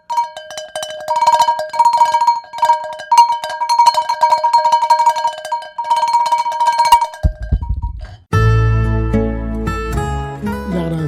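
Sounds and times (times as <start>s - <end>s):
cowbells clanging: 0.0s - 8.3s
music: 8.3s - 11.0s.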